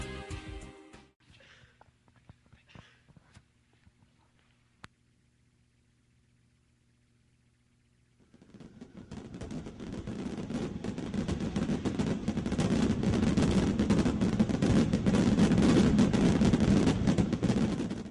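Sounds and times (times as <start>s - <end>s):
dense barrage of fireworks exploding: 8.2s - 18.0s.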